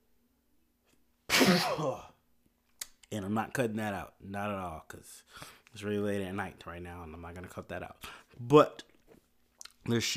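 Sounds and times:
person sneezing: 1.3 - 2.2
speech: 1.5 - 2.1, 3.1 - 8.9, 9.8 - 10.1.

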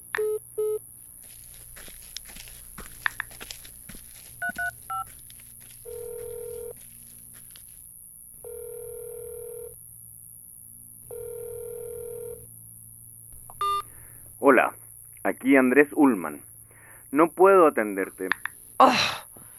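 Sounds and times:
phone keypad beeps: 4.4 - 5.1, 13.5 - 13.9
speech: 15.4 - 16.5, 17.1 - 19.1.

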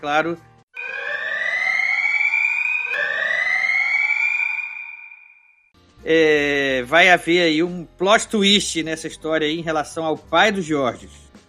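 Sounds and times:
speech: 0.0 - 0.5, 6.0 - 11.3
siren wailing: 0.8 - 5.7.

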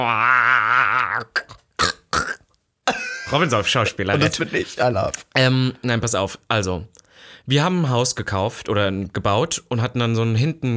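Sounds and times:
speech: 0.0 - 0.2, 3.3 - 10.7
voice imitating a dying frog's croak: 0.0 - 3.2.

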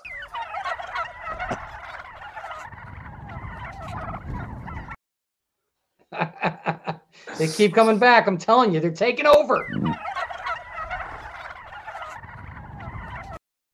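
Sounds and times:
chorus of turkeys gobbling: 0.0 - 5.0, 7.3 - 8.1, 9.3 - 13.4
laughter: 6.1 - 8.1
speech: 7.4 - 10.0.

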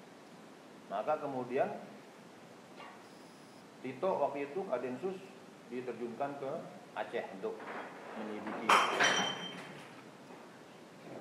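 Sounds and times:
speech: 0.9 - 2.0, 3.8 - 9.5
drinking glass falling and clinking on a hard surface: 8.7 - 10.0.

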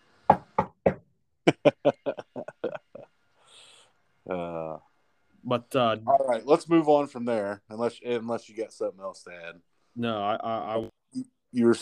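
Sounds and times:
knocking on wood: 0.3 - 1.0
person chuckling: 1.5 - 3.1
soft hiss: 1.5 - 11.8
speech: 5.6 - 11.8.

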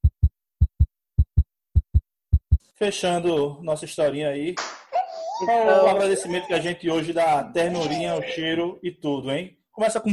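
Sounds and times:
deep heartbeat sound effect: 0.0 - 2.7
speech: 2.8 - 4.8, 5.4 - 10.1
laughter: 5.0 - 8.7.

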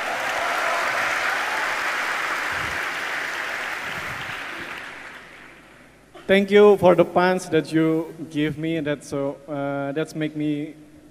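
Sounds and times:
crowd applauding: 0.0 - 5.7
speech: 6.3 - 10.8.

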